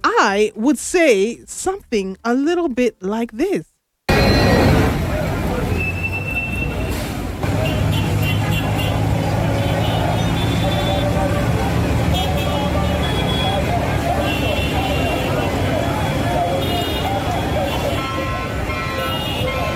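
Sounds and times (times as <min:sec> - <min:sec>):
dense street traffic: 0:00.0 - 0:19.7
speech: 0:00.2 - 0:03.7
crowd chatter: 0:04.1 - 0:19.7
short car horn blasts: 0:05.7 - 0:19.7.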